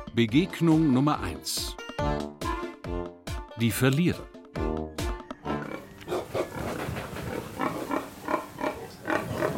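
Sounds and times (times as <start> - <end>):
speech: 0.2 - 2.1, 3.6 - 4.7
pink pigs squealing in an outdoor run on an organic farm: 5.3 - 9.5.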